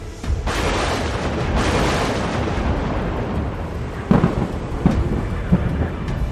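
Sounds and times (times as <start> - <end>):
thunder rumbling from a barrage of lightning strikes: 0.0 - 6.2
sharp cracks of lightning strikes: 0.4 - 6.2.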